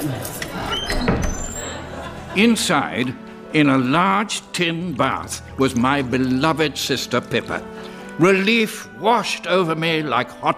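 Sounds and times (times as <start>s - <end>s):
laughter: 0.0s - 3.8s
door creaking open: 0.3s - 1.9s
door latch and handle clunks: 0.4s - 1.6s
speech: 2.4s - 10.5s.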